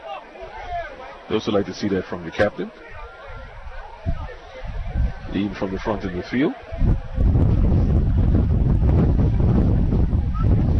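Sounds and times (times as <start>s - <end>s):
speech: 1.3s - 3.0s, 5.4s - 7.0s
wind buffeting a microphone: 2.9s - 10.7s.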